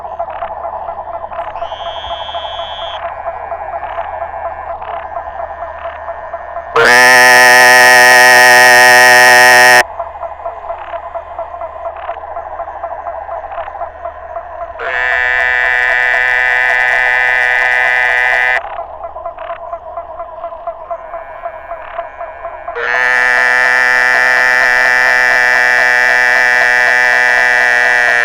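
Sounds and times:
chorus of pulsed frog calls: 0.0s - 28.2s
Muller's termite frog Dermatonotus muelleri calling: 1.6s - 3.1s, 6.8s - 9.8s, 14.8s - 18.6s, 21.0s - 28.2s.

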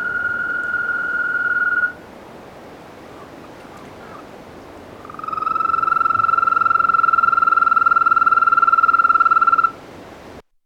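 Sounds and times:
African green toad Bufotes boulengeri trilling: 0.0s - 2.0s, 5.0s - 9.7s.

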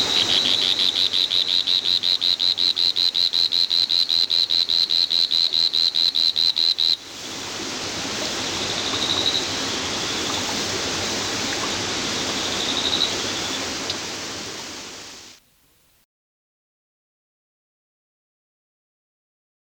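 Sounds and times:
whirring tree frog Litoria revelata clicking call: 0.1s - 7.0s
steady broad hiss: 6.9s - 15.5s.

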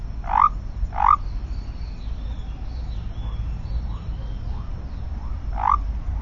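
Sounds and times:
low rumble: 0.0s - 6.1s
Basin white-lipped frog Leptodactylus mystaceus whistled notes: 3.2s - 6.1s.

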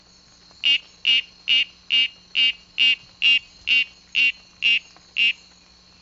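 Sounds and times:
Oreophryne loriae frog calling: 0.6s - 5.4s.

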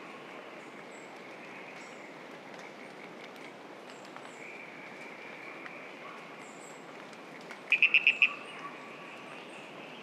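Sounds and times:
Ischnocnema holti frog calling: 7.7s - 8.5s.

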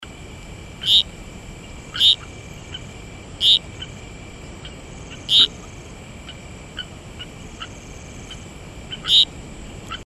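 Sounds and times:
Heterixalus betsileo frog calling: 0.8s - 10.0s.

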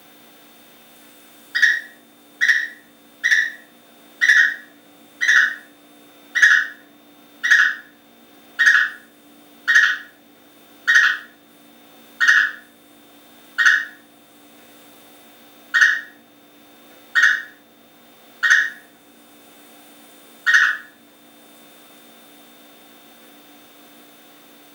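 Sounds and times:
Rhacophorus dennysi calling: 1.6s - 8.0s, 8.6s - 10.2s, 10.8s - 11.4s, 12.2s - 12.7s, 13.6s - 14.0s, 15.7s - 16.2s, 17.1s - 17.6s, 18.4s - 18.9s, 20.4s - 21.0s.

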